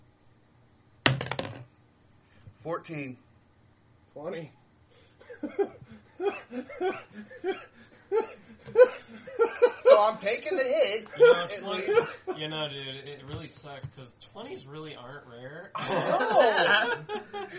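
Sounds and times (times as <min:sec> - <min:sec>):
die clattering onto a hard tabletop: 0:01.1 - 0:01.7
speech: 0:02.6 - 0:03.3, 0:04.2 - 0:04.6, 0:05.4 - 0:17.5
people laughing: 0:05.4 - 0:12.6, 0:15.8 - 0:17.5.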